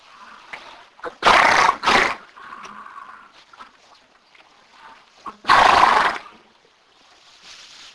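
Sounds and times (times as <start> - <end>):
horse sneezing: 1.0 - 2.2, 5.4 - 6.2.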